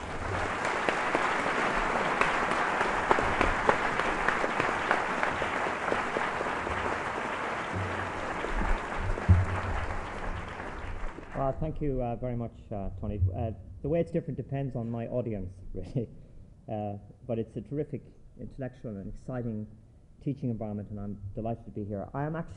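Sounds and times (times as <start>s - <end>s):
audience clapping to welcome a speaker to the stage: 0.0s - 11.8s
speech: 11.7s - 22.5s.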